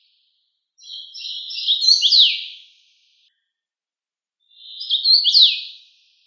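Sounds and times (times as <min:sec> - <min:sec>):
common rosefinch whistled song: 0:00.8 - 0:02.7, 0:04.5 - 0:05.8.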